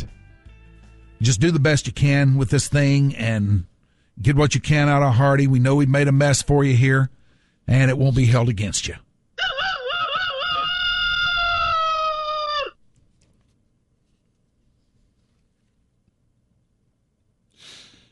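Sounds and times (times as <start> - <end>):
speech: 1.2 - 9.0
rooster crowing: 9.4 - 12.8
soft rustle: 12.9 - 16.3.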